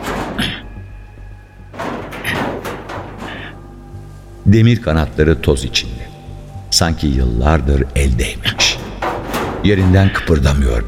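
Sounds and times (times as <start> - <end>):
pushing against a locked iron door: 0.0 - 3.7, 8.5 - 10.5
speech: 4.5 - 6.1, 6.8 - 8.4, 9.6 - 10.8.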